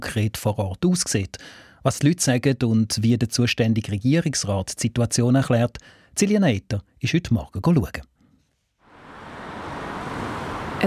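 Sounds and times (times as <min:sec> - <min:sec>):
speech: 0:00.1 - 0:08.1
cars rushing through a village street: 0:08.8 - 0:10.8.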